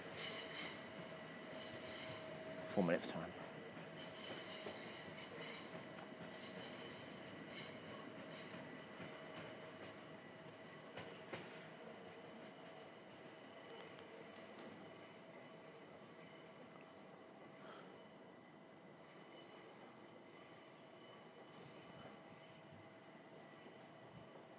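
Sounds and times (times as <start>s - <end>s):
train pulling into a station: 0.0s - 24.5s
high metallic squealing of train wheels: 1.5s - 2.2s, 3.9s - 5.7s, 6.3s - 8.5s
speech: 2.8s - 3.4s.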